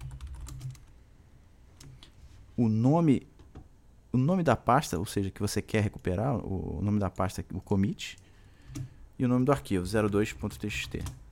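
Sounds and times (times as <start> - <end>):
faint computer keyboard typing a git checkout command: 0.0 - 1.0, 1.8 - 2.2, 7.6 - 11.2
speech: 2.6 - 3.3, 4.1 - 11.2.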